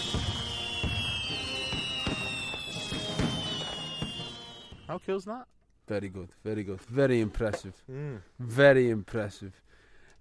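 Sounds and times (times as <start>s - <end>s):
fireworks banging and crackling: 0.0s - 5.0s
high whistling hiss of fireworks: 0.0s - 5.1s
speech: 4.9s - 9.6s.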